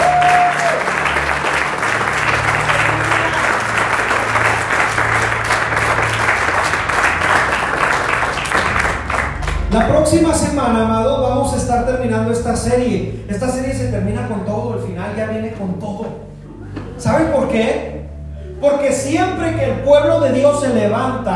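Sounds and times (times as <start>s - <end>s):
large audience clapping loudly: 0.0s - 10.4s
low instrumental hum: 0.0s - 21.3s
speech: 9.8s - 16.3s, 17.0s - 17.9s, 18.6s - 21.3s.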